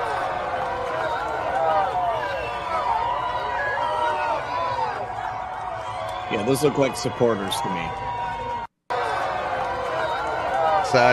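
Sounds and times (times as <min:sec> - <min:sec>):
large crowd cheering: 0:00.0 - 0:11.1
speech: 0:06.3 - 0:08.1, 0:10.9 - 0:11.1.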